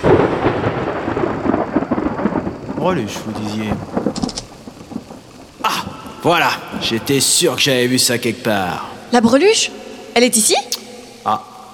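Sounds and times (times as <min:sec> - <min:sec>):
deep rolling thunder: 0:00.0 - 0:07.5
steady hissing rain: 0:00.0 - 0:11.7
speech: 0:02.8 - 0:04.0, 0:06.2 - 0:11.5.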